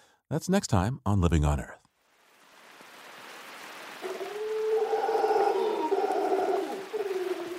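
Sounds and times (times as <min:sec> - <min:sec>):
speech: 0:00.3 - 0:01.8
rain falling in Costa Rican cloud forest: 0:02.0 - 0:07.5
golden-mantled howler monkeys howling in cloud forest treetops in Costa Rica: 0:04.0 - 0:07.5.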